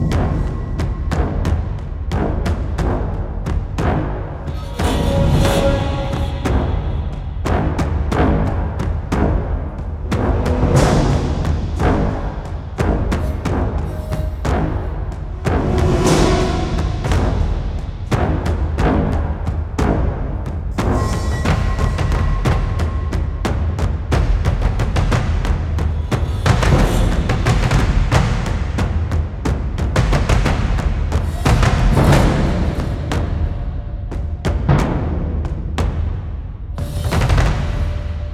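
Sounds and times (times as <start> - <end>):
classic horror sci-fi action music loop: 0.0 - 38.3.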